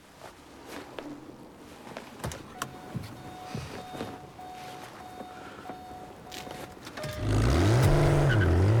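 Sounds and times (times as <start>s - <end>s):
car engine idling then accelerating hard on a road: 6.9s - 8.7s.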